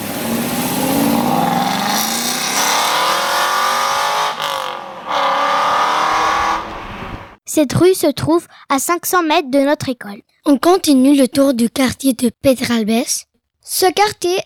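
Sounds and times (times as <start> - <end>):
car engine revving and pulling away: 0.0 - 7.4
speech: 7.6 - 14.4.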